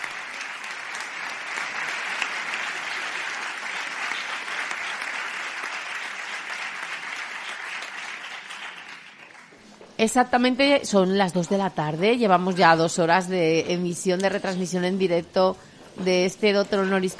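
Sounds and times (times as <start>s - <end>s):
applause from a large audience: 0.0s - 9.6s
speech: 10.0s - 17.1s.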